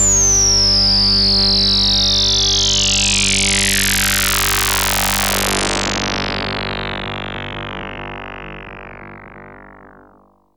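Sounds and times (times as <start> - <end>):
trance synth effect sweep on G2: 0.0 - 10.4.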